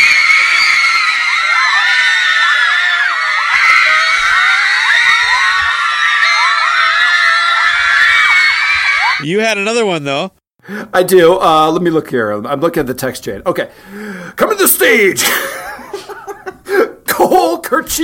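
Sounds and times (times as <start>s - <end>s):
crowd of girls screaming as a band takes the stage: 0.0s - 9.2s
speech: 9.2s - 15.7s, 16.8s - 18.0s
laughter: 15.2s - 17.0s.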